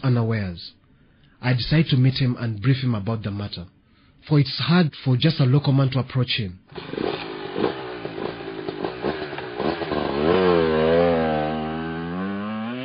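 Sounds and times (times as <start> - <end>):
speech: 0.0 - 0.8, 1.4 - 7.0, 7.6 - 7.8
old motorcycle engine sputtering, starting and revving: 6.7 - 12.8.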